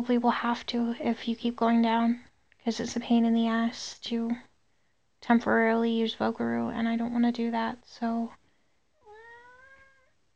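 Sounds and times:
speech: 0.0 - 4.5, 5.2 - 8.4
cat meowing: 9.0 - 10.1.

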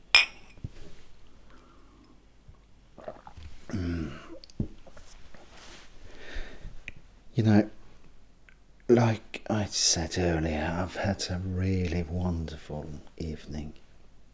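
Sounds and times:
glasses clinking in a toast: 0.1 - 0.6
person clearing throat: 3.7 - 4.4
quiet room rustle: 4.8 - 6.1
speech: 7.4 - 7.8, 8.9 - 13.8.

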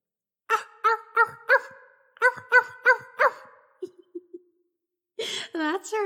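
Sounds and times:
person imitating a seal's barking: 0.5 - 3.7
speech: 5.6 - 6.0.

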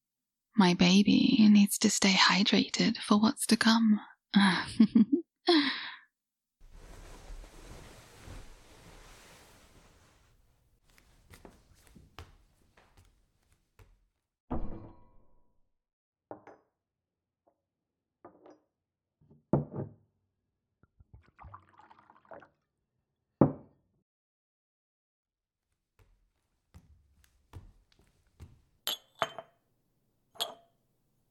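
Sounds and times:
speech: 0.6 - 5.9
water pouring into a glass: 21.2 - 22.7
glass and dishware clinking: 28.9 - 29.6, 30.4 - 30.7.

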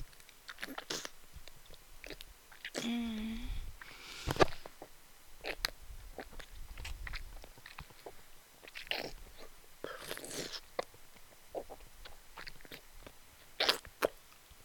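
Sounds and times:
wet mouth sucking and slurping: 0.5 - 2.9, 5.4 - 10.9, 11.5 - 12.8, 13.6 - 14.2
person humming: 2.8 - 3.7.

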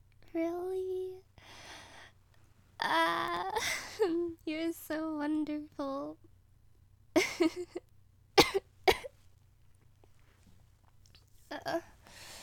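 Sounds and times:
low hum: 0.0 - 12.4
speech: 0.3 - 0.9, 7.4 - 7.8
person coughing: 8.4 - 9.1.

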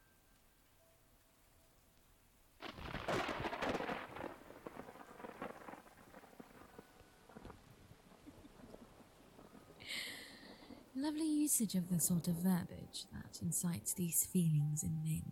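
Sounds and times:
steady dense rain pattering on surfaces: 2.6 - 11.6
loud roll of thunder: 2.6 - 13.9
speech: 11.0 - 15.3.

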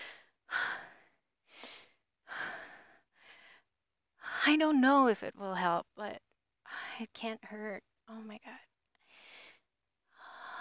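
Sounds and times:
deep breaths: 0.0 - 4.4, 9.0 - 10.6
speech: 4.5 - 6.2, 7.0 - 8.7.

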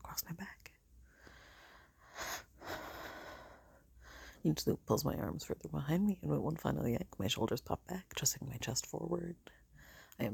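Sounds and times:
quiet hiss: 0.0 - 10.3
deep airy steadying breaths: 1.0 - 4.4, 9.6 - 10.2
speech: 4.4 - 9.6, 10.2 - 10.3.

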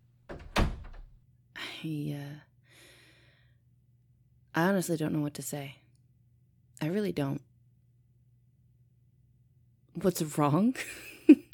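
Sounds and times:
door swinging shut with a solid thunk: 0.3 - 1.2
speech: 1.8 - 2.5, 4.6 - 5.8, 6.8 - 7.5, 10.0 - 11.4.

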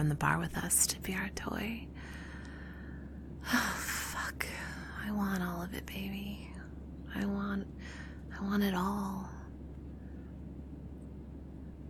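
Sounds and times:
speech: 0.0 - 2.2, 3.4 - 9.4
airplane cabin low rumbling drone: 0.0 - 11.8.

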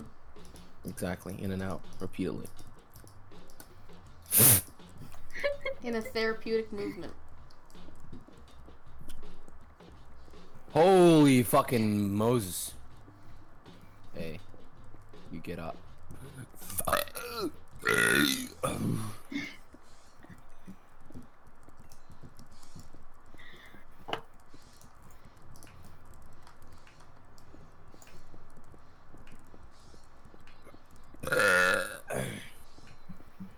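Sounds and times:
speech: 0.8 - 2.7, 5.8 - 7.2, 10.8 - 12.8, 15.3 - 19.2
loud drawn-out burps: 16.6 - 19.5, 31.2 - 32.5.

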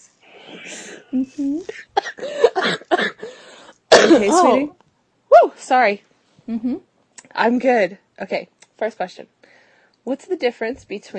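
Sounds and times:
speech: 0.5 - 2.7, 4.2 - 4.8, 5.4 - 9.4, 10.0 - 11.1
person clearing throat and coughing: 0.5 - 3.3, 3.9 - 4.6.

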